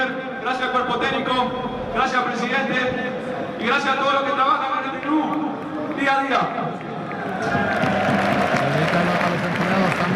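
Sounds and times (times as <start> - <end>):
speech: 0.4 - 5.4, 6.0 - 6.8, 7.4 - 8.0
small group of teammates applauding: 6.8 - 10.1.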